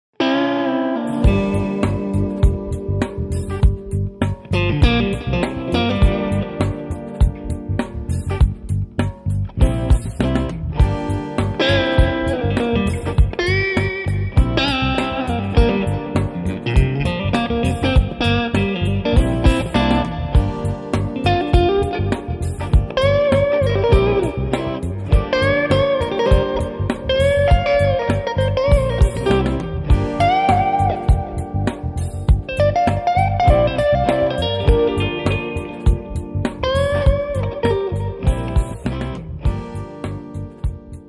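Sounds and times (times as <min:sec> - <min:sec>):
electric guitar through an 18W amplifier: 0:00.2 - 0:41.0.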